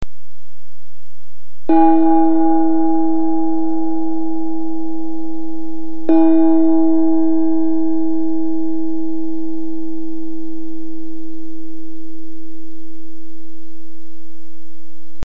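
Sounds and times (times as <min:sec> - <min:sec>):
table gong: 0:01.7 - 0:13.8.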